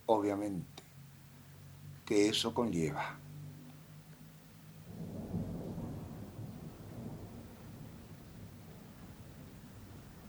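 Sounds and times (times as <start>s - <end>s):
faint patter of rain: 0.0s - 10.2s
speech: 0.1s - 0.8s, 2.1s - 3.3s
rolling thunder from a storm: 4.8s - 10.2s.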